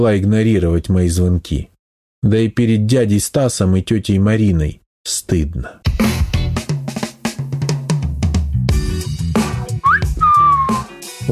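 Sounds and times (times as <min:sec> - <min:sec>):
speech: 0:00.0 - 0:06.1
loud rhythmic music: 0:05.8 - 0:11.3
upward-gliding whistle settling into a held high note: 0:09.8 - 0:10.9.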